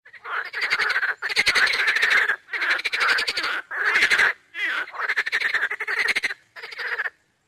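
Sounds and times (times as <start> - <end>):
frogs croaking: 0.1 - 7.2.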